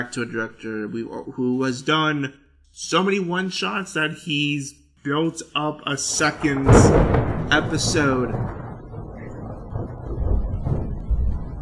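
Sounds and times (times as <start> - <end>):
speech: 0.0 - 8.6
thunder rumbling: 6.1 - 11.6.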